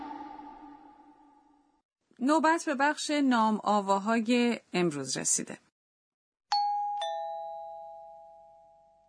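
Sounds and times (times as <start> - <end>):
speech: 2.2 - 5.7
two-note ding-dong correct-answer quiz chime: 6.5 - 9.0.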